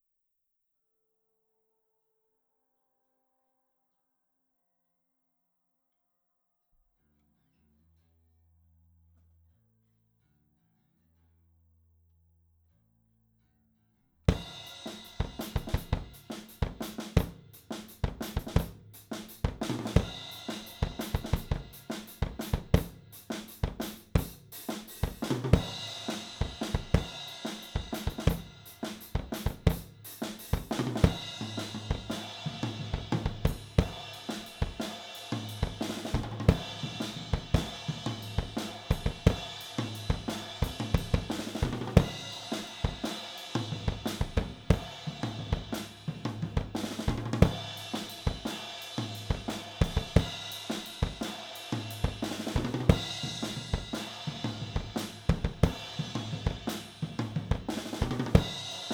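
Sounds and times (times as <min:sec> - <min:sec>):
drums recorded with AKG414 microphone: 0:14.3 - 0:58.9.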